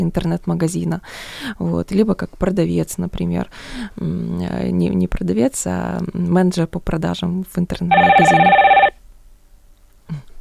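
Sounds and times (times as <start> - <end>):
speech: 0.0 - 8.7
telephone ringing with an electronic burst: 7.9 - 9.0.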